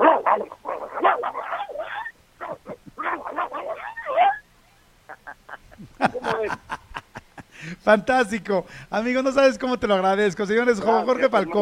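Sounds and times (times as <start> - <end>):
human voice imitating a dog fight: 0.0 - 4.4
laughter: 5.1 - 7.7
speech: 7.9 - 11.6.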